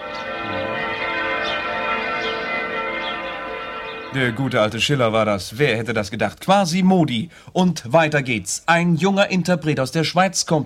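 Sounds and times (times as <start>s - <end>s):
church bell ringing: 0.0s - 6.6s
speech: 4.1s - 10.6s.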